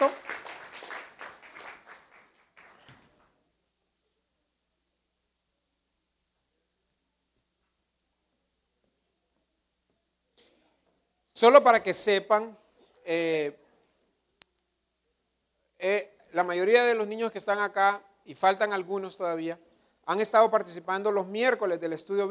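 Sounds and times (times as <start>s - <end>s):
speech: 0.0s - 0.2s, 11.4s - 13.6s, 15.8s - 22.2s
audience cheering on the children at a Christian church gathering: 0.0s - 2.9s
audience clapping at a Christian church gathering: 0.0s - 3.3s.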